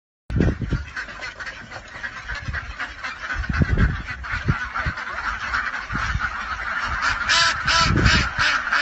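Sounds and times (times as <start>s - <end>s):
ducks honking in winter: 0.3s - 8.8s.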